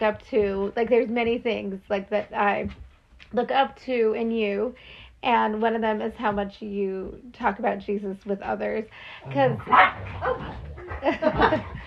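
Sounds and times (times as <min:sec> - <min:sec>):
speech: 0:00.0 - 0:11.8
indistinct voices: 0:09.2 - 0:11.0
puppy barking and yipping while playing: 0:09.6 - 0:10.8
laughter: 0:10.6 - 0:11.8.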